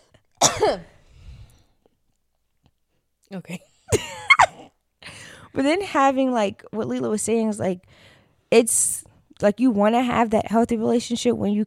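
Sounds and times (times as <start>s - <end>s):
harsh cough: 0.4s - 0.9s, 3.9s - 4.8s
speech: 0.6s - 0.9s, 3.3s - 4.0s, 5.5s - 11.6s
low rumble of breath and movement: 1.0s - 1.8s.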